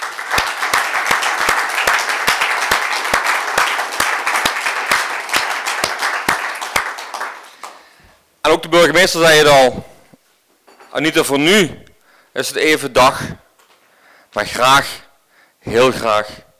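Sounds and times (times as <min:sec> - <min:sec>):
audience applauding: 0:00.0 - 0:07.9
speech: 0:08.5 - 0:09.9, 0:10.9 - 0:13.4, 0:14.3 - 0:15.0, 0:15.6 - 0:16.4.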